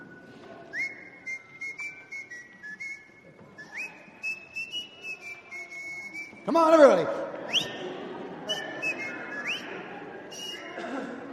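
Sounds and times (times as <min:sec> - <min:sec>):
person whistling a simple song melody: 0:00.0 - 0:06.4, 0:08.5 - 0:09.7, 0:10.3 - 0:10.7
speech: 0:06.5 - 0:07.6.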